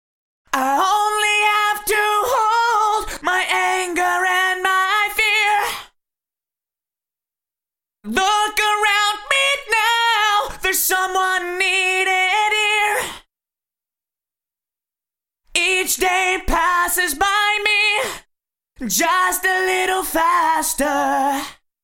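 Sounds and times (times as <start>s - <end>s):
vocals through a Yamaha Rev7 reverb unit on Symphonic setting: 0.5s - 6.0s, 8.0s - 13.3s, 15.5s - 21.7s.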